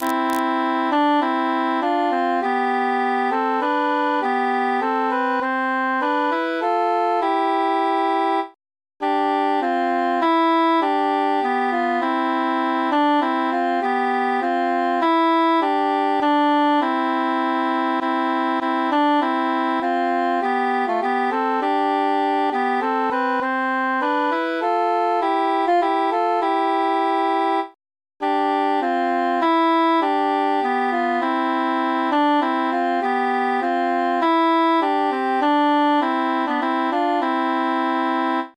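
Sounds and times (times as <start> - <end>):
tenor instrument with mute: 0.0 - 38.5.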